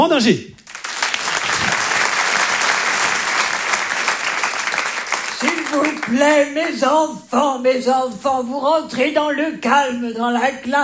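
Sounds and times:
speech: 0:00.0 - 0:00.6, 0:06.1 - 0:10.8
large audience applauding a performer: 0:00.6 - 0:06.6.

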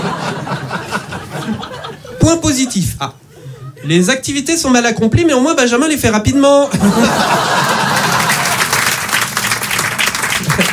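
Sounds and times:
laughter: 0:00.0 - 0:02.2, 0:06.7 - 0:08.8
speech: 0:02.3 - 0:03.2, 0:03.8 - 0:07.8
audience applause: 0:07.2 - 0:10.7.

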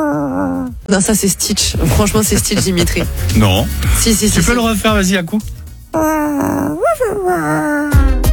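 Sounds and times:
person imitating a growling dog: 0:00.0 - 0:00.7, 0:06.0 - 0:08.3
speech: 0:00.9 - 0:06.7, 0:07.3 - 0:07.7
laughter: 0:01.4 - 0:05.2.

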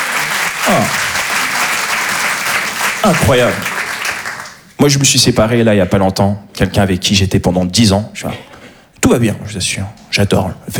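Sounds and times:
audience applauding: 0:00.0 - 0:04.8
speech: 0:00.7 - 0:01.1, 0:03.0 - 0:03.7, 0:04.8 - 0:10.7.

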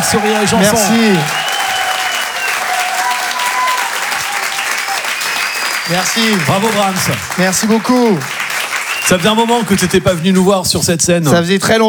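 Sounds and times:
thin high audience whistles: 0:00.0 - 0:07.0, 0:08.3 - 0:09.8
audience applause at a live comedy show: 0:00.0 - 0:11.0
speech: 0:00.1 - 0:01.4, 0:05.9 - 0:08.4, 0:09.0 - 0:11.8.

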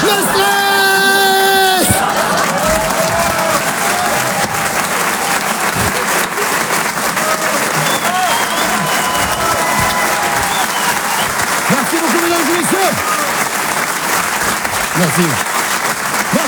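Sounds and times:
scattered voices: 0:00.0 - 0:15.5, 0:16.2 - 0:16.4
audience applause at a comedy club: 0:00.0 - 0:16.4
faint cheers: 0:00.0 - 0:16.4
laughter: 0:00.0 - 0:16.4
speech: 0:15.2 - 0:15.5.

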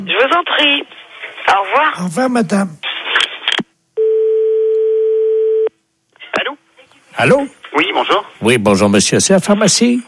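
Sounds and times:
speech: 0:00.0 - 0:02.8, 0:07.2 - 0:10.0
telephone ringing tone while calling a mobile phone: 0:04.0 - 0:05.7.

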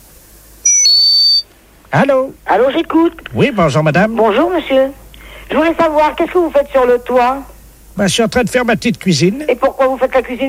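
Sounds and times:
electronic beeps of a telephone number being dialled: 0:00.7 - 0:01.4
speech: 0:01.9 - 0:10.4.

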